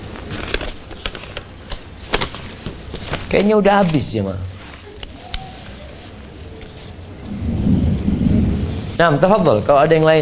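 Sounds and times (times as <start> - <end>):
speech: 3.3 - 4.5, 9.0 - 10.1
low rumble of thunder: 7.1 - 9.8
steady rain hissing: 7.1 - 10.0.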